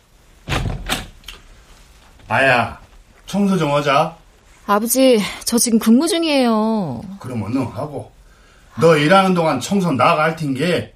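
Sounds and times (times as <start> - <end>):
bedroom door flung open at home: 0.4 - 1.2
heavy thump: 0.4 - 1.2
speech: 2.3 - 8.2, 8.8 - 10.9.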